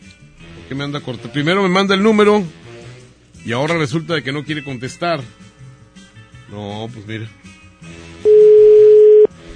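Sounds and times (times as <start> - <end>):
speech: 0.7 - 2.6, 3.4 - 5.4, 6.5 - 7.5
telephone tone while a caller redials: 8.2 - 9.3.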